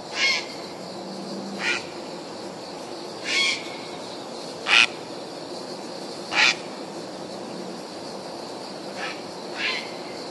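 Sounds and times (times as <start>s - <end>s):
grey heron calling: 0.1s - 0.6s, 1.6s - 2.0s, 3.2s - 4.0s, 4.7s - 5.1s, 6.3s - 6.8s, 9.0s - 10.2s.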